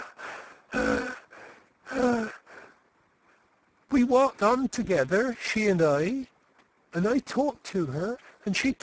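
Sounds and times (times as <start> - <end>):
voice imitating someone blowing their breath hard: 0.0 - 2.8
speech: 4.0 - 6.3, 6.9 - 8.8.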